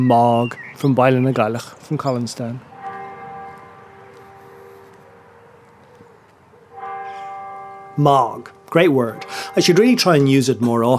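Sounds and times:
speech: 0:00.0 - 0:02.7, 0:08.0 - 0:10.9
church bell tolling: 0:01.4 - 0:10.9.

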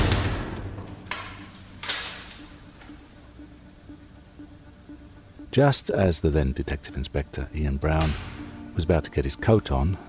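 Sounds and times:
heavy metal cell door slamming shut: 0:00.0 - 0:00.9
speech: 0:05.5 - 0:10.0.

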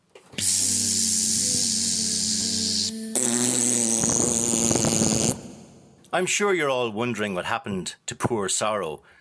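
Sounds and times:
buzzing raspy comic fly fart noise: 0:00.4 - 0:05.8
speech: 0:06.2 - 0:09.1.

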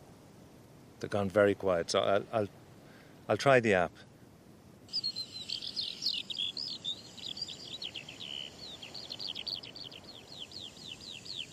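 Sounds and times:
faint hiss: 0:00.0 - 0:11.5
speech: 0:01.0 - 0:02.6, 0:03.3 - 0:04.1
birdsong of rapid high chirps and short trills: 0:04.9 - 0:11.5.

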